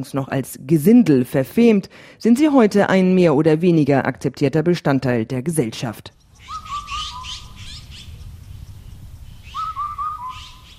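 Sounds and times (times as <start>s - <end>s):
speech: 0.0s - 6.2s
birds chirping and whistling among meadows and small woods in Songchuang village outside Beijing China: 6.1s - 10.7s
cuckoo calling: 6.2s - 10.7s.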